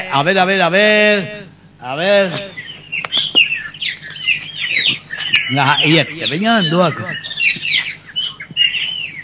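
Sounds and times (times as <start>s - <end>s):
speech: 0.1s - 2.5s, 5.5s - 7.3s
small bird chirping: 2.3s - 9.2s.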